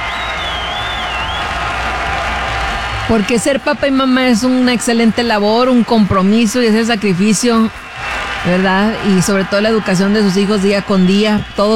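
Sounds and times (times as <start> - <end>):
thin high whistle: 0.0 - 3.4, 7.6 - 11.7
crowd applauding at an event celebrating a world day for mothers and fathers: 0.0 - 11.7
speech: 3.1 - 11.7.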